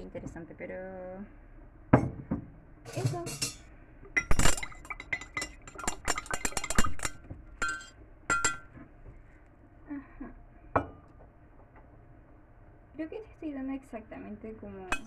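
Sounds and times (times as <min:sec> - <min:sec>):
speech: 0:00.1 - 0:02.1, 0:02.8 - 0:03.6, 0:13.0 - 0:15.0
mate cup and metal straw clinking: 0:04.2 - 0:08.7.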